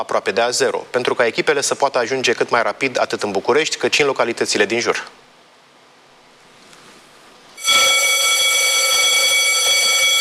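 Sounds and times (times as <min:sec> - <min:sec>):
speech: 0:00.0 - 0:05.2
fire station call-out alarm for a CBRN crew subunit in Jilava: 0:07.6 - 0:10.1.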